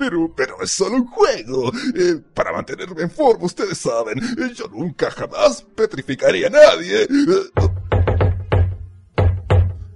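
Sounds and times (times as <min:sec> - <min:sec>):
speech: 0:00.0 - 0:07.8
loud heavy knocks on a door: 0:07.6 - 0:09.9.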